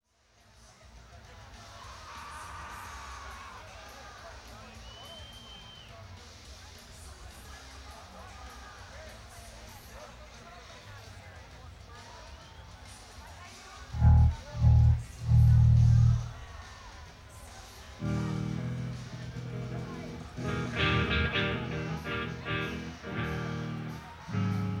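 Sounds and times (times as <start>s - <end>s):
live band jamming at an amphitheatre: 14.0s - 16.4s, 18.0s - 24.7s.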